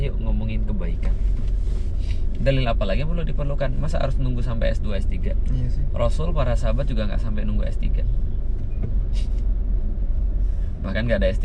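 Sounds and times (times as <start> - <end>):
heavy road traffic jam with idling cars and buses: 0.0 - 11.4
bus air brake hiss: 1.6 - 2.3, 9.1 - 9.4
speech: 2.4 - 8.1, 10.8 - 11.4.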